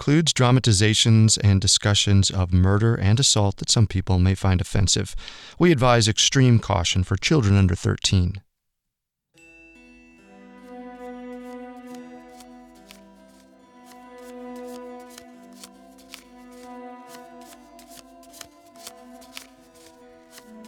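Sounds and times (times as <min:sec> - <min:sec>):
speech: 0:00.0 - 0:08.5
sustained musical tones: 0:09.4 - 0:20.6
deck of cards shuffling: 0:11.3 - 0:20.6.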